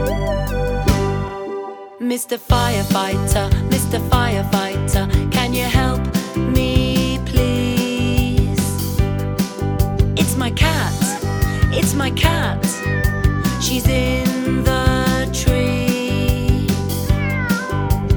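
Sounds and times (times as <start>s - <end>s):
busy rhythmic music track: 0.0s - 18.1s
speech: 2.2s - 6.8s
cat meowing: 11.1s - 13.8s, 17.0s - 18.1s.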